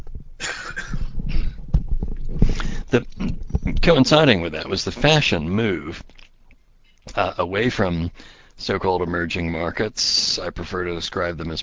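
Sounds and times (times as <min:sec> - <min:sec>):
coughs: 0:00.4 - 0:01.6
speech: 0:02.9 - 0:03.4, 0:03.9 - 0:06.2, 0:07.2 - 0:11.6.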